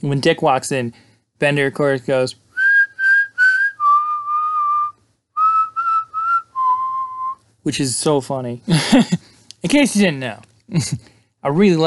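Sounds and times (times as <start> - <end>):
speech: 0.0 - 2.4, 7.6 - 11.8
person whistling to imitate a movie scene: 2.6 - 7.4.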